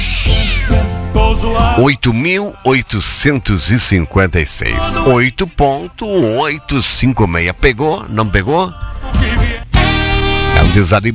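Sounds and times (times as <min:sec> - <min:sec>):
cat meowing: 0:00.0 - 0:00.9
speech: 0:01.3 - 0:09.4, 0:10.6 - 0:11.1.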